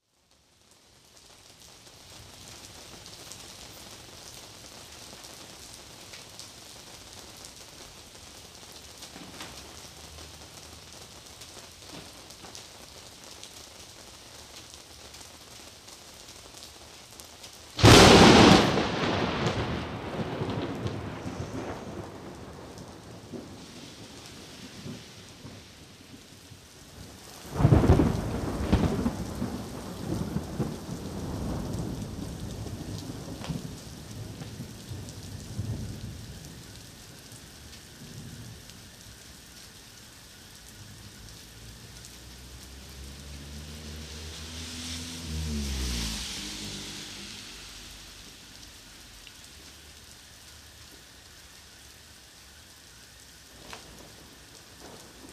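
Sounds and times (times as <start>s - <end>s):
rain: 0.0s - 55.3s
heavy thunder: 17.8s - 25.6s, 27.5s - 36.5s.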